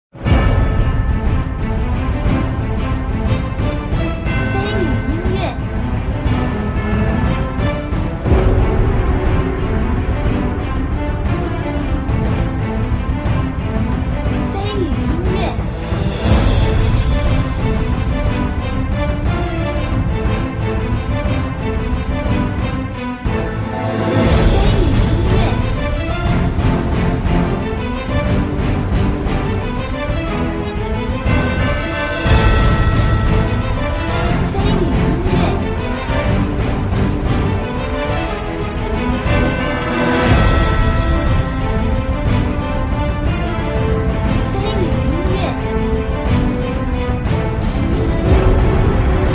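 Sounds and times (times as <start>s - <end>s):
battle music: 0.1s - 49.3s.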